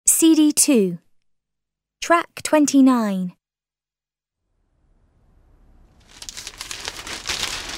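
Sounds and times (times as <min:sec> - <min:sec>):
speech: 0:00.2 - 0:01.0, 0:02.0 - 0:03.4
newspaper pages rustling: 0:06.0 - 0:07.7.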